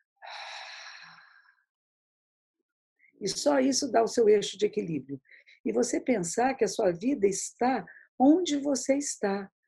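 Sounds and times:
deep inhale and exhale: 0.2s - 1.7s
speech: 3.2s - 9.6s.

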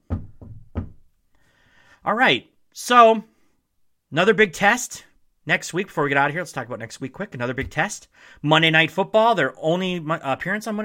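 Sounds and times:
knuckles knocking on wood: 0.0s - 1.0s
speech: 2.0s - 3.3s, 4.1s - 10.8s.

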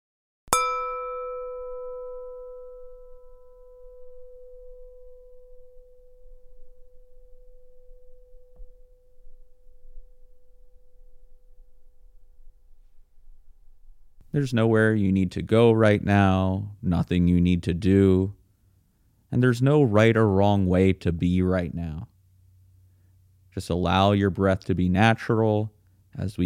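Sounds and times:
meditation bell struck and resonating: 0.5s - 12.0s
faint noise: 1.7s - 26.4s
speech: 14.4s - 18.4s, 19.3s - 22.1s, 23.6s - 26.4s.

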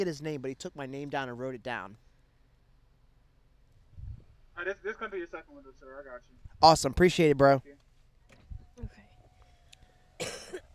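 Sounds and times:
speech: 0.0s - 2.1s, 4.6s - 7.8s
faint steady hum: 0.0s - 10.7s
harsh rough smoker's cough: 10.2s - 10.7s
low throat-clearing grunts: 10.2s - 10.7s.

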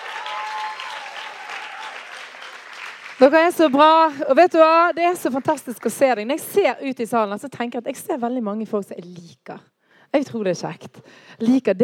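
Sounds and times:
audience in a hall applauding a crew at a live event: 0.0s - 3.8s
speech: 3.2s - 11.8s.

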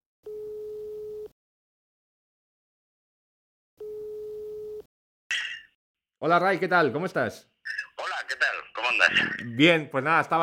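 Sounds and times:
telephone ringback tone while a call is placed: 3.8s - 4.8s
speech: 6.2s - 7.8s, 8.9s - 10.4s.

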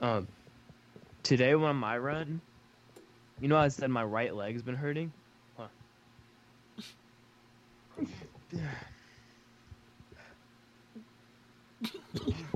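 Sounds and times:
speech: 0.0s - 0.4s, 1.2s - 2.5s, 3.4s - 5.8s, 6.8s - 7.0s, 8.0s - 8.9s
low steady hum: 0.0s - 12.5s
person sneezing: 6.8s - 7.0s, 7.9s - 8.9s
abrupt breathy vocal noises: 7.9s - 9.3s.

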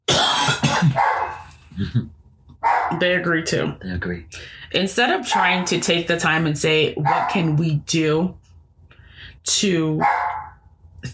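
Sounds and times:
dogs barking: 0.7s - 1.6s, 2.6s - 3.0s, 5.2s - 5.9s, 7.0s - 7.7s, 10.0s - 10.6s
speech: 1.8s - 2.2s, 2.9s - 8.4s, 9.5s - 10.2s.

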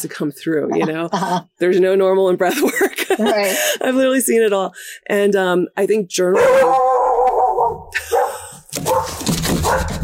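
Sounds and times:
speech: 0.0s - 6.8s
laughter: 2.5s - 3.8s
dogs barking: 6.4s - 10.0s.

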